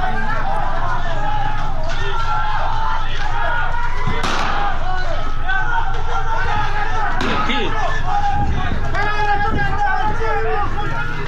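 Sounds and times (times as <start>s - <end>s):
noisy outdoor crowd shouting and chattering: 0.0s - 11.2s
gunshots: 4.1s - 4.8s, 7.2s - 7.5s.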